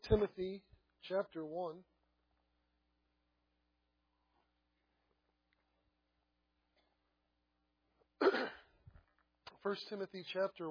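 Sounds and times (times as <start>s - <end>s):
speech: 0.1s - 1.9s, 9.6s - 10.7s
man clearing his throat: 8.2s - 8.8s.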